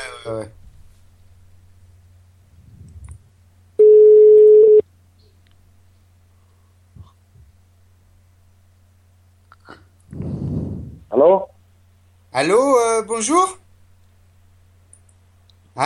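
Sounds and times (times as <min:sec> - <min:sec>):
speech: 0:00.2 - 0:00.6, 0:12.4 - 0:13.6
soft rustle: 0:00.6 - 0:01.4
telephone ringback tone from an outgoing call: 0:03.8 - 0:04.8.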